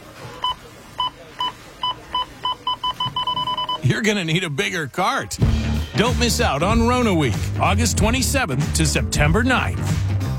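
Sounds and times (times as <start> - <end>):
checkout scanner beeps at a store till: 0.0 - 5.0
speech: 3.8 - 10.1.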